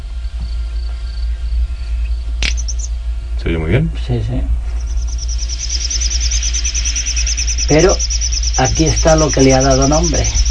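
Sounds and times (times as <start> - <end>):
steady low rumble: 0.0 - 10.4
bird giving thin high-pitched contact calls: 0.8 - 3.0, 4.6 - 10.4
speech: 3.5 - 4.6, 7.7 - 10.4.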